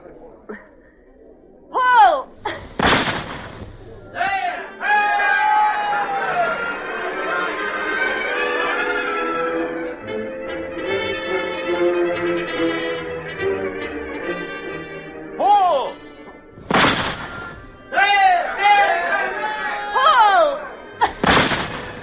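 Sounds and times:
crowd voices: 0.0 - 12.5, 15.4 - 22.0
people gasping: 2.2 - 4.2, 20.3 - 22.0
gunshot during a shooting match: 2.7 - 4.0, 16.6 - 17.7, 21.2 - 22.0.

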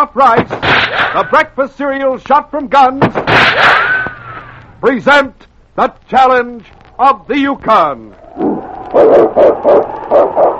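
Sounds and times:
speech: 0.0 - 3.9, 4.8 - 10.2
lead sled dog barking on a snowy trail: 8.9 - 10.5.

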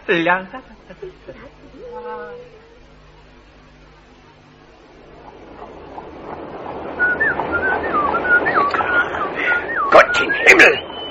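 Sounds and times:
speech: 0.1 - 2.6
rising rumbling clatter: 4.4 - 11.1
person whistling a thin wavering tune: 7.0 - 11.1.

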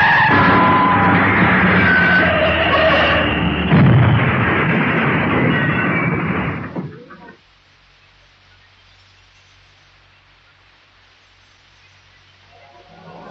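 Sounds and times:
heavy car crash impact: 0.0 - 7.2
worn-out car engine roaring: 0.0 - 7.2, 12.5 - 13.2
worn-out car tyres squealing in a skid: 0.0 - 7.4.

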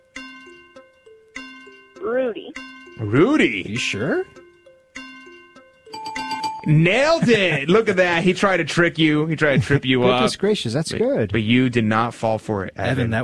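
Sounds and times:
game show countdown clock ticking: 0.2 - 10.2
speech: 2.0 - 4.4, 6.7 - 13.2
laughter: 6.7 - 13.2.

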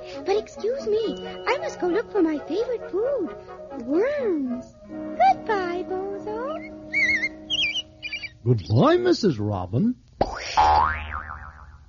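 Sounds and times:
speech: 0.2 - 6.7, 8.4 - 10.0, 10.6 - 11.0
cartoon boing of bouncing on a hopping toy: 10.2 - 11.8.

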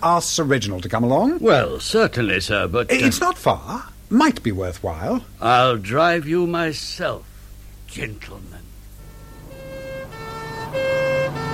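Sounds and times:
speech: 0.0 - 7.3, 7.9 - 8.6
police car siren wailing in a two-tone pattern: 9.0 - 11.5.

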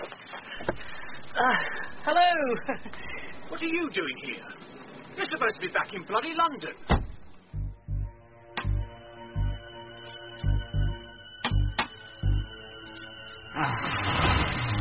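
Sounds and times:
speech: 0.7 - 4.6, 5.2 - 7.0, 13.6 - 14.2
clock ticking: 7.3 - 8.8, 10.4 - 12.5.

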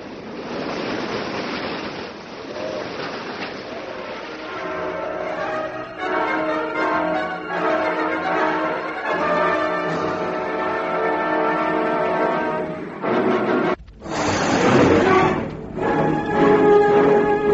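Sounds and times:
heavy open-sea waves crashing around a small boat: 0.0 - 17.5.

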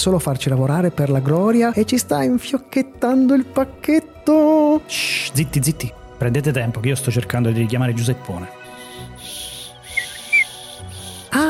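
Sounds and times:
speech: 0.0 - 8.6
ultrasonic whistle being blown: 9.2 - 11.2.

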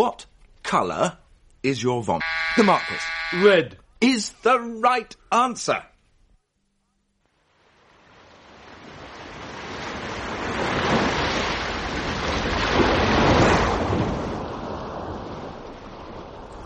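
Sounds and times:
speech: 0.0 - 5.9
ocean waves and surf: 7.4 - 16.6.

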